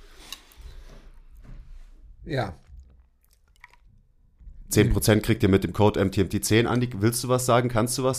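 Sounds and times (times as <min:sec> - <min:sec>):
speech: 0:02.3 - 0:02.6, 0:04.7 - 0:08.1
person chewing while eating soup: 0:02.6 - 0:04.1.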